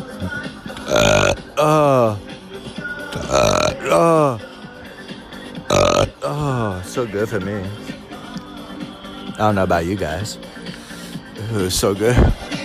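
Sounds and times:
deep rumbling burps after drinking bourbon: 0:00.1 - 0:02.2, 0:03.2 - 0:04.4, 0:05.6 - 0:06.9
speech: 0:00.2 - 0:01.8, 0:07.0 - 0:07.9, 0:09.4 - 0:10.5, 0:11.5 - 0:12.4
faint breathy noise: 0:00.3 - 0:02.2, 0:03.1 - 0:04.5, 0:05.7 - 0:06.7.

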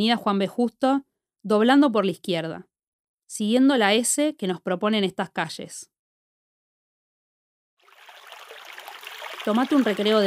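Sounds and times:
speech: 0:00.0 - 0:02.7, 0:03.3 - 0:05.9, 0:09.4 - 0:10.2
flowing stream water: 0:07.8 - 0:10.2.

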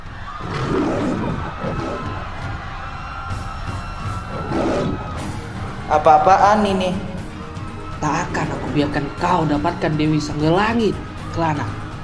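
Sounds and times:
raging lion roaring angrily in a forest: 0:00.4 - 0:02.6, 0:04.3 - 0:05.2
speech: 0:05.9 - 0:07.1, 0:08.0 - 0:11.8.

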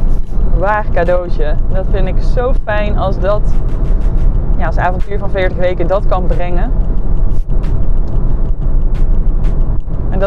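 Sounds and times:
car moving heard from inside the cabin with road and engine hum: 0:00.0 - 0:10.2
speech: 0:00.6 - 0:03.9, 0:04.6 - 0:06.9.

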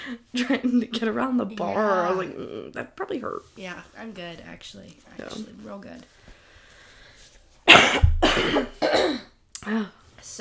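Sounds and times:
speech: 0:00.0 - 0:06.2, 0:07.7 - 0:10.3
phlegmy cough from a congested person: 0:07.6 - 0:09.4.

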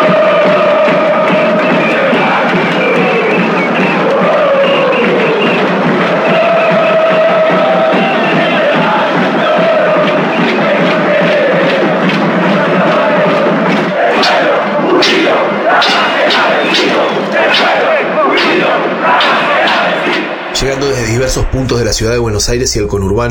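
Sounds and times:
large loud crowd of protesters chanting a slogan while marching at night: 0:00.0 - 0:20.9
cooking pots being banged in a rapid fairly regular rhythm: 0:15.8 - 0:17.0
speech: 0:21.8 - 0:23.2.

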